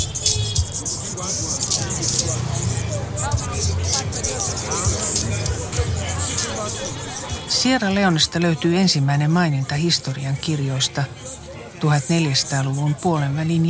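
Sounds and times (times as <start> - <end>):
motorcycle taxis honking in traffic: 0.0 - 8.2
busy street crowd chatter: 0.0 - 13.6
passing vehicle engines on a busy street: 0.0 - 13.6
speech: 7.6 - 11.2, 11.8 - 13.6.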